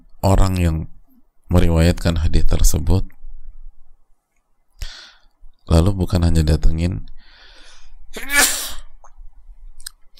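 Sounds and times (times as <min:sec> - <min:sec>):
speech: 0:00.2 - 0:03.1, 0:05.7 - 0:07.2, 0:08.1 - 0:08.4
person sneezing: 0:08.2 - 0:08.9.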